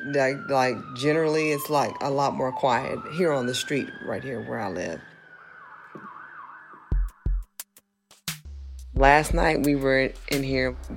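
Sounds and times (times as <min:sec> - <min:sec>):
emergency siren wailing outside on a residential street: 0:00.0 - 0:07.4
speech: 0:00.1 - 0:05.1, 0:09.0 - 0:10.9.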